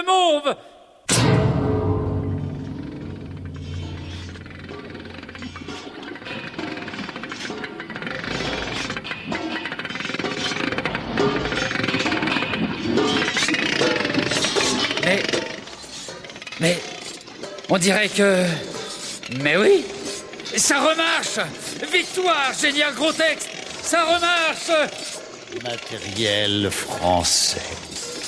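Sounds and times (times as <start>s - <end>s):
speech: 0.0s - 1.7s, 16.6s - 16.9s, 17.7s - 18.7s, 19.3s - 27.9s
hammer banging on a metal machine: 1.1s - 6.3s
steady mechanical rumble: 1.1s - 17.6s.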